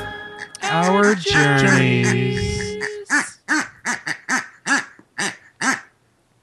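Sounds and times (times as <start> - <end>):
pig making duck-like quacks: 0.6 - 5.9.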